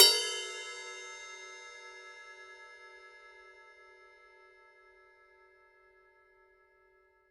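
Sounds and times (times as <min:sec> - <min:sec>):
Paiste PST 5 20-inch rock ride cymbal bell: 0:00.0 - 0:03.9.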